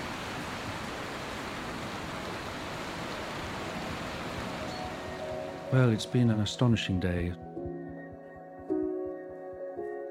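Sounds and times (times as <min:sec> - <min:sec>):
swollen river in full spate rushing past beyond a wall: 0:00.0 - 0:06.5
speech: 0:05.7 - 0:07.5.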